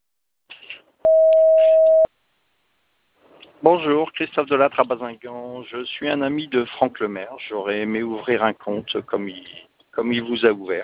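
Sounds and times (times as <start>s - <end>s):
voicemail recording beep tone: 1.1s - 2.1s
speech: 3.6s - 10.8s.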